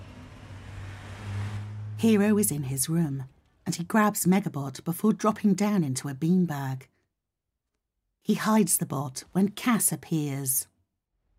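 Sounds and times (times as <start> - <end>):
car engine humming low and steady: 0.0 - 2.8
road traffic passing outside: 0.0 - 3.5
speech: 2.0 - 6.9, 8.2 - 10.7.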